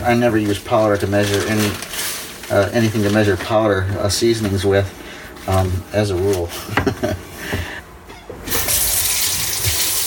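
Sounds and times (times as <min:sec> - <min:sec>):
speech: 0:00.0 - 0:07.7
tap water running into a kitchen sink for rinsing: 0:08.5 - 0:10.0.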